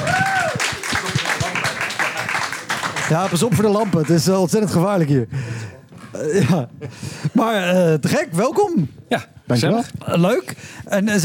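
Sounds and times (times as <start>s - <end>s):
audience crowd clapping: 0.0s - 4.9s
speech: 3.1s - 5.4s, 6.2s - 11.2s.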